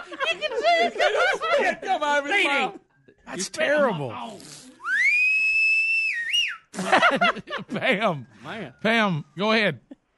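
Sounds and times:
laughter: 0.0s - 2.4s, 6.7s - 8.2s
speech: 0.3s - 4.6s, 6.8s - 9.9s
person whistling through their lips: 4.8s - 6.7s.

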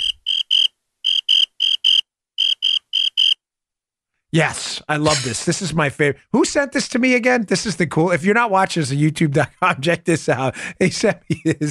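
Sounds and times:
crickets chirping: 0.0s - 3.4s
speech: 4.3s - 11.6s
laughter: 9.5s - 11.6s.

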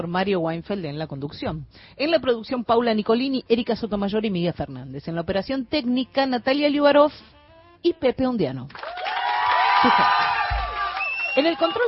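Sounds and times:
speech: 0.0s - 9.0s, 9.8s - 10.3s, 11.4s - 11.8s
large crowd cheering and shouting: 8.8s - 11.8s.

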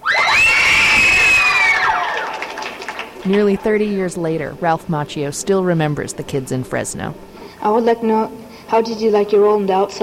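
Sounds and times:
group of children cheering and shrieking: 0.0s - 3.2s
speech: 3.3s - 10.0s.

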